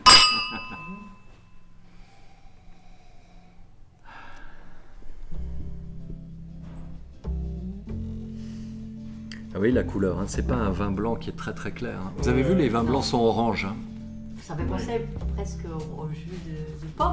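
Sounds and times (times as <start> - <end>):
wine glasses clinking in a toast: 0.0 - 1.4
speech: 9.6 - 13.9, 14.5 - 17.1.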